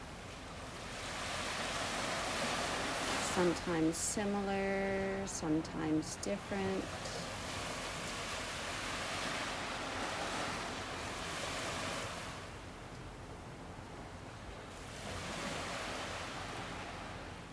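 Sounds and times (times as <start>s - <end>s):
ocean waves rolling in and out: 0.0s - 17.5s
speech: 3.4s - 7.2s.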